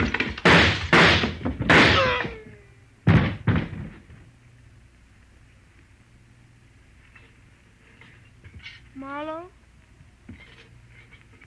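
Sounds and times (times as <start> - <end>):
gunshots in a dramatized scene: 0.0 - 2.4.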